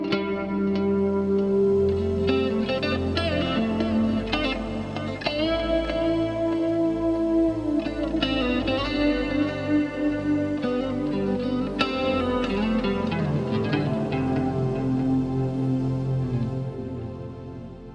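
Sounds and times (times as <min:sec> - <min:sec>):
building intro tone through a Bassman amplifier: 0:00.2 - 0:17.9.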